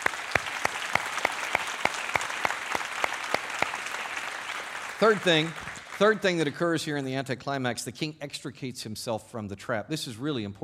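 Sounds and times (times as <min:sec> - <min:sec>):
congregation clapping in unison in a large room: 0:00.0 - 0:06.4
speech: 0:05.0 - 0:10.6.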